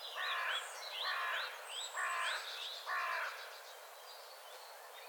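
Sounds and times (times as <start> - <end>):
carrion crow uttering harsh rasping caws: 0.2 - 3.4.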